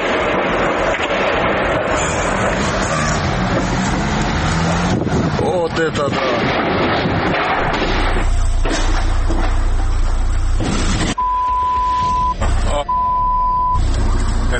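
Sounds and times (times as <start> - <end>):
car engine rumbling and roaring as the car pulls out: 0.0 - 14.5
speech: 5.8 - 6.7
long steady electronic beep: 11.2 - 13.8.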